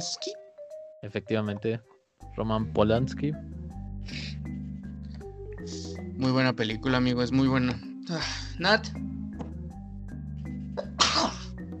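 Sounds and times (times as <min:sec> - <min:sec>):
speech: 0:00.0 - 0:04.2, 0:05.6 - 0:09.1
loud breathy sneeze: 0:10.8 - 0:11.5.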